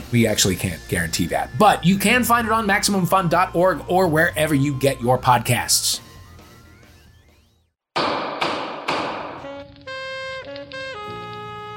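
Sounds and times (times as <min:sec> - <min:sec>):
speech: 0:00.1 - 0:06.1
loud thumps while repairing a floating chair: 0:08.0 - 0:09.7.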